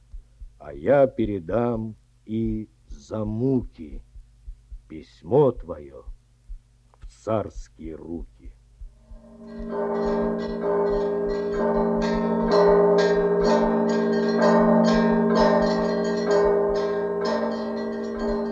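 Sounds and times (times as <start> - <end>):
speech: 0.6 - 4.1, 4.9 - 6.2, 7.2 - 8.6, 9.4 - 11.0
copper church bells ringing in a steady peal over Moscow: 9.3 - 18.5.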